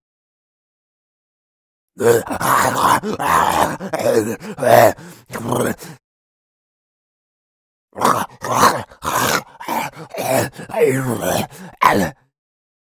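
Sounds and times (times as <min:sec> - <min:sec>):
ferocious male zombie raging attack: 0:02.2 - 0:05.9, 0:08.2 - 0:12.1.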